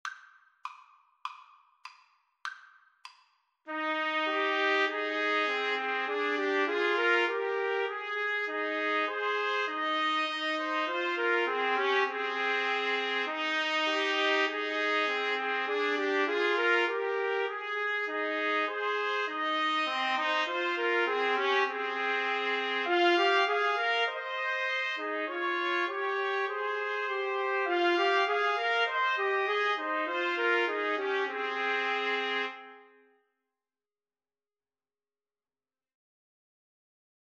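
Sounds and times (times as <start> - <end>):
trumpet trio playing: 3.7 - 32.9.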